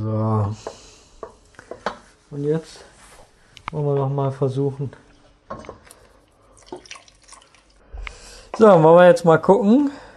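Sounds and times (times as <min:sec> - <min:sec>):
speech: 0:00.0 - 0:00.8, 0:02.3 - 0:02.9, 0:03.7 - 0:05.7, 0:08.6 - 0:10.0
drop of olive oil falling: 0:05.8 - 0:07.8.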